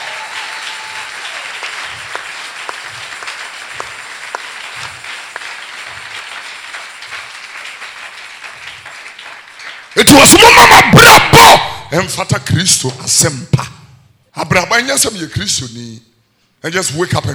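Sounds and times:
congregation clapping hands in church: 0.0 - 11.8
speech: 10.2 - 11.1, 11.9 - 13.8, 14.5 - 17.3.

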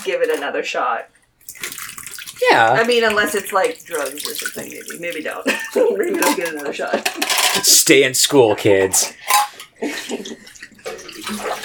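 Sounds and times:
speech: 0.0 - 11.6
water running from a tap for a final Ilford wash of photographic film: 1.4 - 7.4, 10.1 - 11.6.

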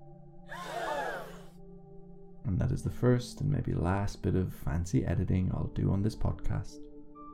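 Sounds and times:
person gasping with a quick inhaled breath: 0.5 - 1.5
speech: 2.5 - 6.9.

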